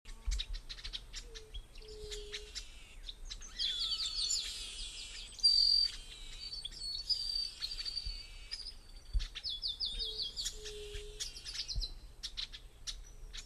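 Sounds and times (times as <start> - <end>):
Chrysomus ruficapillus calling: 0.1 - 13.4.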